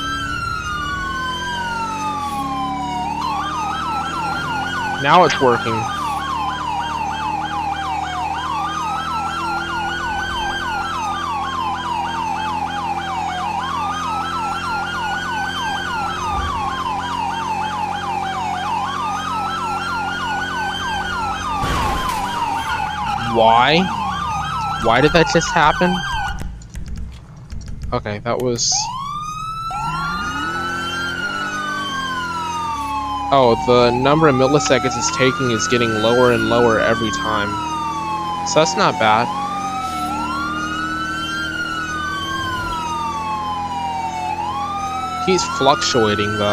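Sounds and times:
emergency siren wailing: 0.0 - 27.1, 28.2 - 46.5
speech: 5.0 - 6.0, 23.4 - 24.0, 24.8 - 26.1, 27.9 - 29.0, 33.3 - 37.7, 38.5 - 39.4, 45.3 - 46.5
sharp clicks: 26.3 - 28.5.

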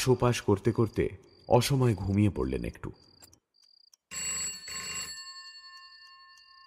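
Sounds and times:
speech: 0.0 - 3.1
faint ticks: 2.9 - 4.2, 5.0 - 6.6
home landline telephone bell ringing harshly: 4.1 - 6.6.

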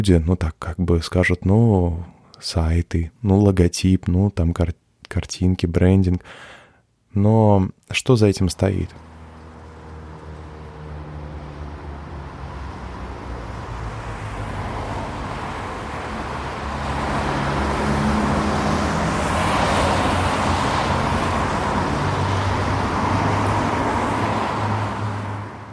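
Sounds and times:
speech: 0.0 - 9.1
evening city street traffic: 8.3 - 25.7
cars rumbling and swishing past: 8.8 - 25.7.

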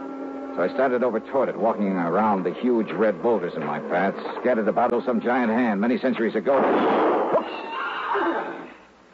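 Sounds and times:
speech: 0.6 - 8.6
horse whinnying: 7.3 - 8.8.

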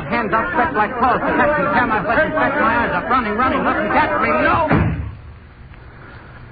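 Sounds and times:
laughter: 0.0 - 4.7
speech: 0.2 - 4.8
door slamming shut with a heavy thud: 4.6 - 5.2.

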